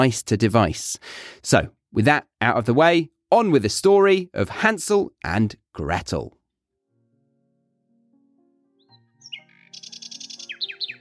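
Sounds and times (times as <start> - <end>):
speech: 0.0 - 6.4
bird chirping: 8.7 - 10.9.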